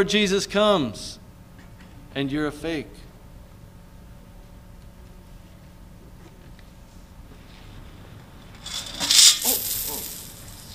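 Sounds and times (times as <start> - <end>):
speech: 0.0 - 1.2, 2.1 - 3.0
coins dropping: 8.6 - 10.7.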